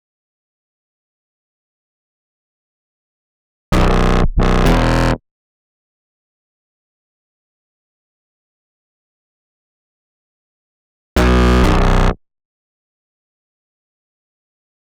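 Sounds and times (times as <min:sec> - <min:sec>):
synth bass in B minor: 0:03.7 - 0:05.2, 0:11.2 - 0:12.2.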